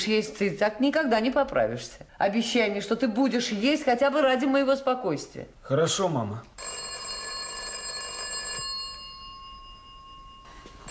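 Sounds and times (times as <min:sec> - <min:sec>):
speech: 0:00.0 - 0:06.6
telephone bell ringing inside a family home: 0:06.6 - 0:10.8.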